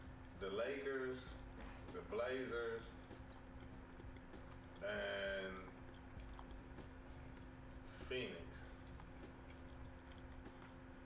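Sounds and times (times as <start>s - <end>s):
speech: 0.4s - 3.1s, 4.8s - 5.8s, 8.0s - 8.6s
soft wet chewing with mouth open: 2.8s - 11.0s.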